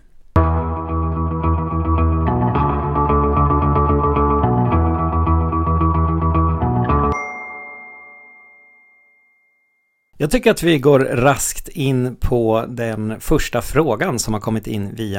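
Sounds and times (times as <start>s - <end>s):
short electronic podcast intro signature tune with synth chords: 0.4s - 8.4s
bright chime: 7.1s - 10.1s
speech: 10.2s - 15.1s.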